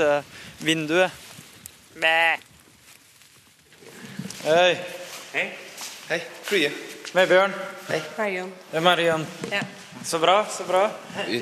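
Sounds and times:
speech: 0.0 - 1.2, 2.0 - 2.5, 4.4 - 11.4
sheep bleating outside an upper secondary school in the Faroe Islands: 1.9 - 2.5.

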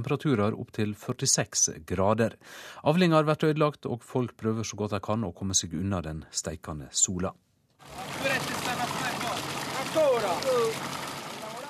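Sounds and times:
speech: 0.0 - 8.5
fountain water splashing in Rome during a heat wave: 7.8 - 11.6.

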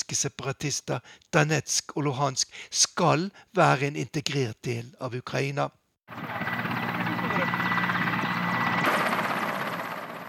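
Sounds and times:
speech: 0.1 - 6.5
Mi-8 helicopter rotor chop and engine whine descending to land: 6.1 - 10.2.

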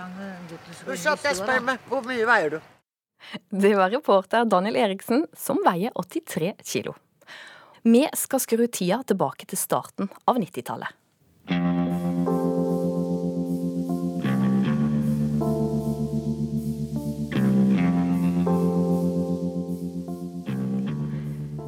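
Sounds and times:
speech: 0.0 - 11.0
effect-laden synth chords with echo and reverb: 11.6 - 21.6
steady low drone: 11.9 - 21.6.

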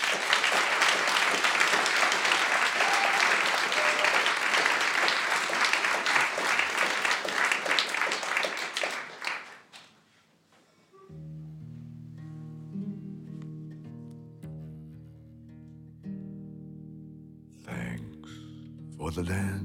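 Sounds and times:
audience applause: 0.0 - 9.9
speech: 19.2 - 19.6.

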